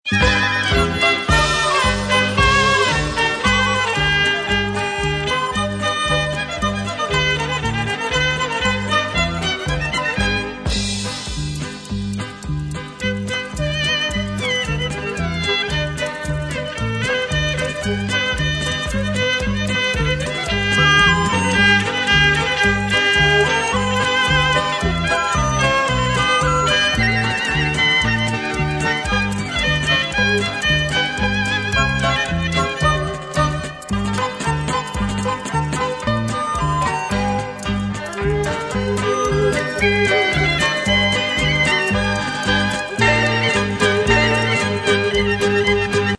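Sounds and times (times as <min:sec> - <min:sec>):
instrumental music: 0:00.0 - 0:46.1.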